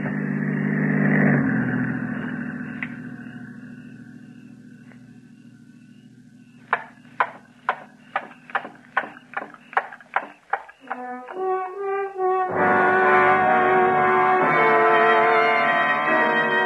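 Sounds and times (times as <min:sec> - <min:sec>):
patrol car engine humming: 0:00.0 - 0:16.6
sharp knocks: 0:06.7 - 0:11.4.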